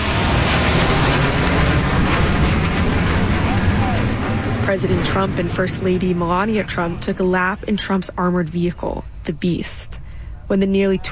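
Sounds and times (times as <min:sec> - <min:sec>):
military jets passing overhead: 0:00.0 - 0:11.1
speech: 0:04.7 - 0:11.1.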